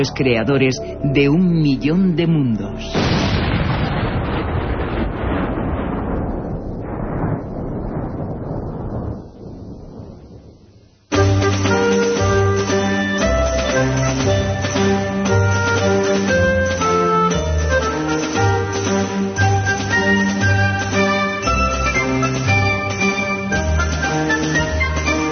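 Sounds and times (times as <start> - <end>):
music: 0.0 - 3.0, 11.1 - 25.3
speech: 0.0 - 3.4
vast explosion engulfing a planet, its sun and the solar system: 2.9 - 10.9.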